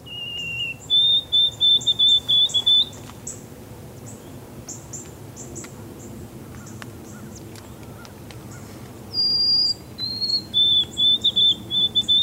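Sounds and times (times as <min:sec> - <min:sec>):
songbird singing clear whistled song: 0:00.0 - 0:03.4, 0:06.6 - 0:12.2.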